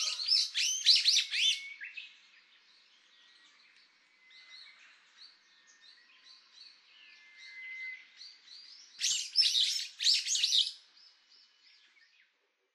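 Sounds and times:
brown-eared bulbul harsh screechy calls on Hahajima: 0.0 - 1.6, 9.0 - 10.8.

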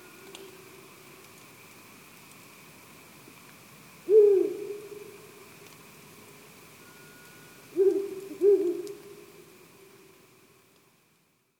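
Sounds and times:
faint steady hum: 0.0 - 11.5
owl hooting in Tsubetsu: 4.0 - 5.2, 7.7 - 9.4.

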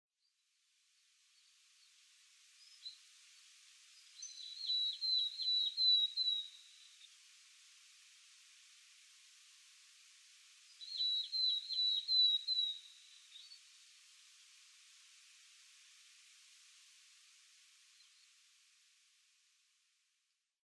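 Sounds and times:
willow tit calling: 4.0 - 7.1, 10.7 - 13.6.

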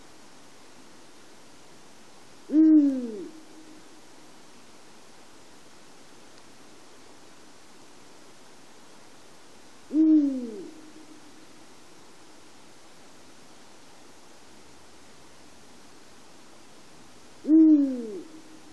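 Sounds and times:
soft background hiss: 0.0 - 18.7
Eurasian eagle-owl hooting in Dohoku: 2.5 - 3.7, 9.9 - 11.2, 17.4 - 18.5.

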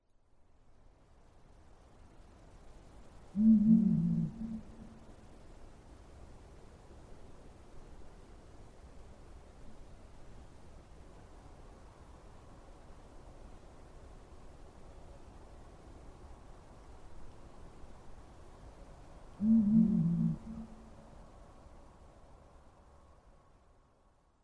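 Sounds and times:
Blakiston's fish owl calling in Nemuro: 3.4 - 5.0, 19.4 - 21.1.

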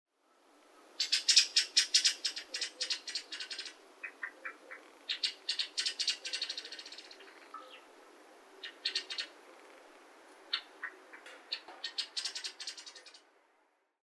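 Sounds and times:
pale thrush chattering calls in Saitama, Japan: 1.0 - 7.9, 8.6 - 13.2.

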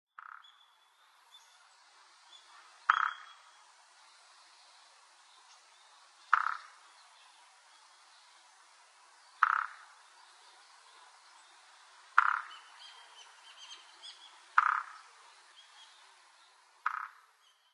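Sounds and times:
Japanese Pygmy Woodpecker calling in Kunitachi: 0.1 - 0.8, 2.3 - 3.6, 6.3 - 7.0, 9.4 - 10.0, 12.2 - 16.0, 16.8 - 17.7.

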